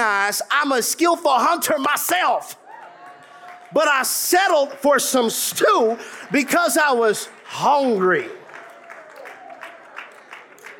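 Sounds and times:
speech: 0.0s - 2.6s, 3.7s - 8.4s
audience clapping: 2.6s - 5.0s, 5.8s - 10.7s.

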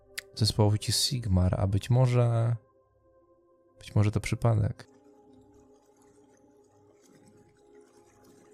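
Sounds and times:
speech: 0.4s - 2.7s, 3.8s - 4.9s
water trickling and flowing: 3.8s - 8.5s.

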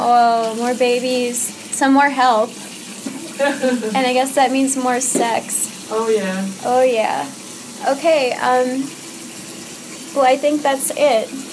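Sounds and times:
running tap water washing a baby's bottom: 0.0s - 11.5s
speech: 0.1s - 2.7s, 3.4s - 9.0s, 10.1s - 11.5s
laughter: 3.3s - 4.0s.

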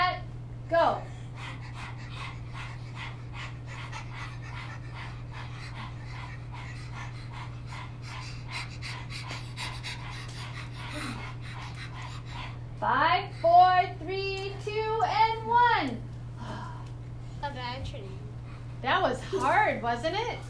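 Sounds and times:
constant low hum: 0.0s - 19.8s
people panting with tongues out imitating a dog as a breathing exercise: 0.8s - 15.1s
speech: 19.7s - 20.4s.

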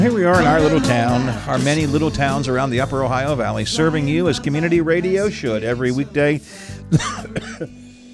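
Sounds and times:
speech: 0.2s - 7.8s
harsh coughing fit: 6.9s - 7.8s.

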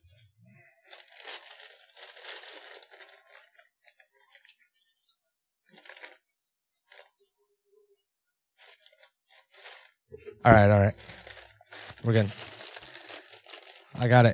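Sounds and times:
brown paper bag holding a gift rustling: 0.9s - 3.6s, 5.8s - 6.2s, 8.6s - 14.3s
speech: 10.4s - 11.1s, 12.0s - 12.5s, 14.0s - 14.3s.

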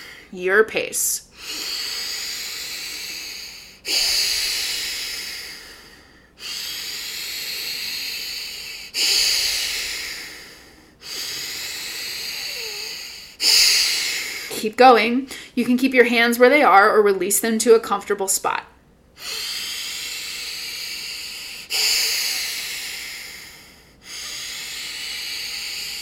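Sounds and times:
deep breathing during a guided ribcage exercise: 0.0s - 0.4s, 1.3s - 14.6s, 19.2s - 26.0s
speech: 0.3s - 1.8s, 14.6s - 18.7s.

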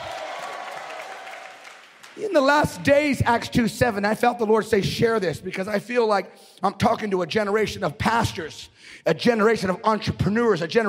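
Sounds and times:
audience clapping: 0.0s - 2.9s
speech: 2.2s - 10.8s.

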